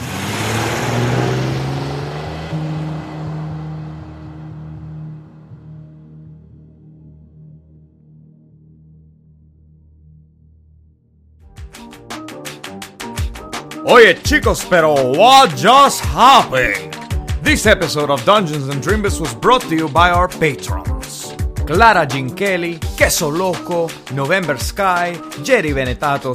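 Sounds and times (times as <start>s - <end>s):
two vehicles driving off in separate directions: 0.0s - 6.0s, 13.6s - 24.1s
police car engine starting, rumbling and revving: 0.0s - 6.3s
speech: 13.9s - 20.9s, 21.7s - 26.3s.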